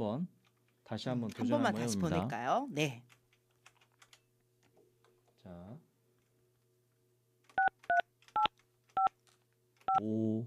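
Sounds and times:
speech: 0.0 - 3.2, 5.4 - 5.9, 10.0 - 10.4
telephone keypad tones from a handset being dialed: 7.6 - 9.1.

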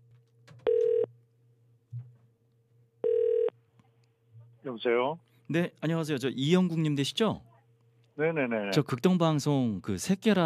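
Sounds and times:
phone line ringback tones: 0.6 - 1.1, 3.0 - 3.5
speech: 4.8 - 7.5, 8.2 - 10.4.

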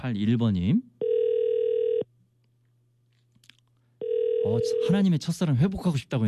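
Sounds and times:
speech: 0.0 - 0.9, 4.4 - 6.2
outgoing phone call ringback tone: 1.0 - 2.0, 4.0 - 5.0.

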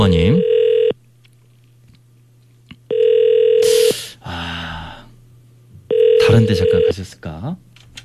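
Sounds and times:
speech: 0.0 - 0.5, 6.4 - 7.7
telephone ringback tone on an outgoing call: 0.4 - 0.9, 2.9 - 3.9, 5.9 - 6.9.

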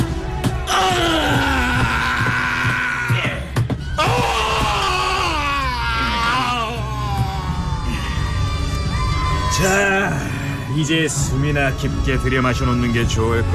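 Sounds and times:
men sentenced to death screaming and groaning in agony on Golgotha hill: 0.5 - 11.1
speech: 10.8 - 13.5.

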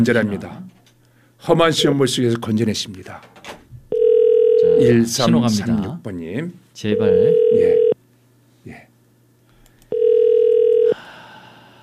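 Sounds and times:
speech: 0.0 - 0.7, 1.4 - 3.5, 4.7 - 7.8
telephone ringback tone on an unanswered call: 3.9 - 4.9, 7.0 - 8.0, 9.9 - 11.0.

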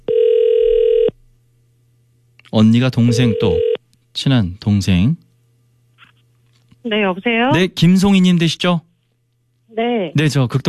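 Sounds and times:
ringback tone of an outgoing telephone call: 0.1 - 1.1, 3.0 - 3.8
speech: 2.6 - 5.2, 6.8 - 8.9, 9.8 - 10.6.

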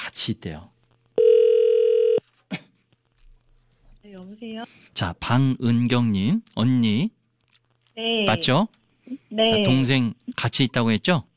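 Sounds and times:
speech: 0.1 - 0.7, 4.1 - 7.2, 8.0 - 11.3
telephone ringback tone: 1.2 - 2.2.

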